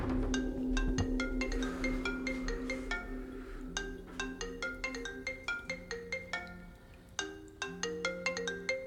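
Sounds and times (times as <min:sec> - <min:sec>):
phone on a kitchen counter ringing with a bright melodic ringtone: 0:00.8 - 0:08.8.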